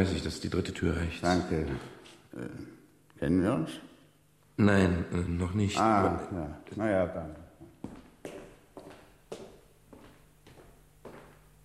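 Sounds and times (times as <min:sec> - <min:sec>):
speech: 0:00.0 - 0:03.9, 0:04.6 - 0:08.0
unsteady footsteps walking toward a door: 0:06.6 - 0:11.6.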